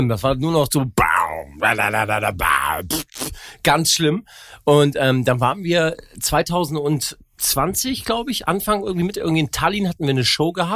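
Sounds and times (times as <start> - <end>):
speech: 0.0 - 10.7
voice imitating a dubstep wobble bass: 0.8 - 3.4.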